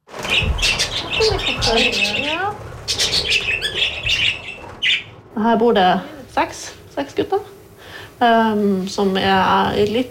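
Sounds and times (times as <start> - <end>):
flock of six male budgerigars chirping and squawking at a shelter in Tromsø Norway: 0.2 - 5.2
speech: 1.7 - 2.7, 5.4 - 7.5, 8.2 - 10.0.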